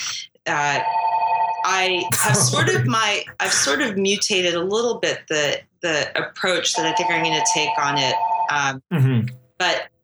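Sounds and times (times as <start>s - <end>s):
speech: 0.5s - 1.0s, 1.6s - 9.9s
telephone ringing with an electronic warble: 0.6s - 2.1s, 6.7s - 8.8s.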